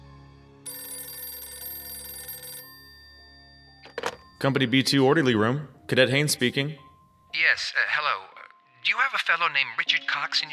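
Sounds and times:
telephone bell ringing: 0.7 - 4.9
speech: 4.4 - 8.3, 9.0 - 10.5.

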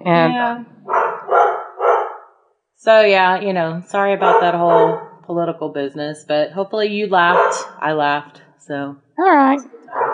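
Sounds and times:
speech: 0.0 - 0.8, 2.8 - 10.1
dogs barking: 0.8 - 2.3, 4.2 - 5.2, 7.2 - 7.7, 9.8 - 10.1
dog yelping: 0.9 - 2.3, 4.2 - 5.2, 9.9 - 10.1.

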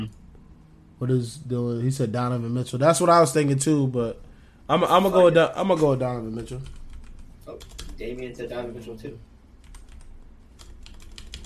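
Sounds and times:
low steady hum: 0.0 - 11.4
speech: 1.0 - 6.8, 7.5 - 9.3
typing on a computer keyboard: 6.4 - 8.0, 9.6 - 11.4.

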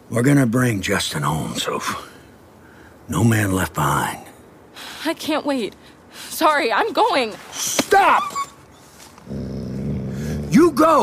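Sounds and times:
speech: 0.1 - 2.2, 3.1 - 8.4, 10.5 - 11.0
low rumbling wolf growl: 9.2 - 10.8.

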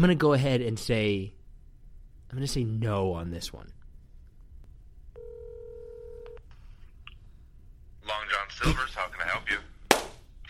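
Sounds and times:
speech: 0.0 - 1.4, 2.3 - 3.8, 8.1 - 9.7
steady electronic phone tone: 5.2 - 6.4.

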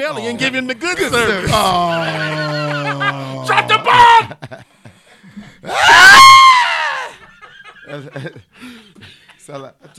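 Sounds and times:
speech: 0.0 - 2.6, 3.5 - 4.7, 7.9 - 8.7, 9.5 - 9.9
laughter: 1.0 - 5.0, 7.1 - 9.2
person screaming: 1.5 - 4.3, 5.7 - 7.2.

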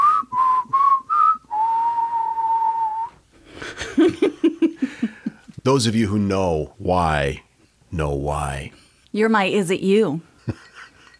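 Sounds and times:
person whistling a family call signal: 0.0 - 3.2
laughter and giggling: 3.5 - 5.6, 10.4 - 11.1
speech: 5.6 - 10.6.

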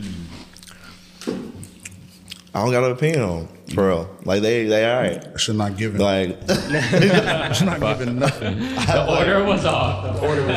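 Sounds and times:
chewing on a caramel pretzel snack: 0.1 - 2.6
speech: 2.6 - 10.5
laughter: 6.4 - 10.5.

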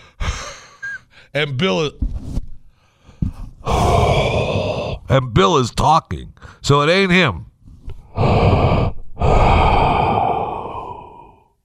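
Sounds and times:
heavy breathing of person falling asleep over a phone line: 0.0 - 1.4, 2.7 - 5.1, 8.0 - 11.6
speech: 1.3 - 2.1, 5.1 - 7.5, 8.2 - 9.3.

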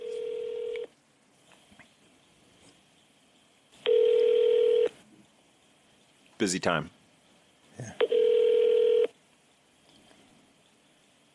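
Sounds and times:
electronic ringback tones over a phone line during call transfer: 0.0 - 0.9, 3.8 - 4.9, 8.0 - 9.1
speech: 6.4 - 7.0.

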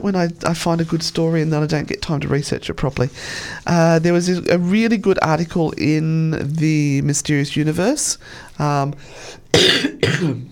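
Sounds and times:
speech: 0.0 - 10.5
harsh rasping coughs: 9.5 - 10.5.

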